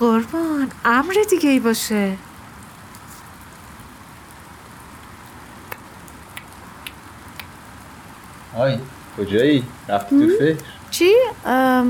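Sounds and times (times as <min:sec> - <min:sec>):
steady rain falling: 0:00.0 - 0:11.8
speech: 0:00.9 - 0:02.3, 0:08.6 - 0:11.8
sharper drips or taps: 0:05.6 - 0:07.6.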